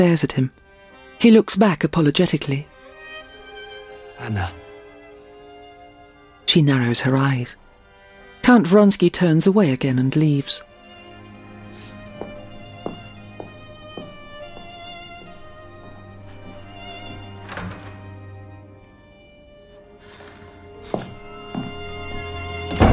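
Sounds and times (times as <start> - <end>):
speech: 0.0 - 0.6, 1.2 - 2.7, 4.2 - 4.6, 6.5 - 7.6, 8.4 - 10.7
doors shutting with dull heavy thunks: 17.0 - 18.0, 22.6 - 22.9.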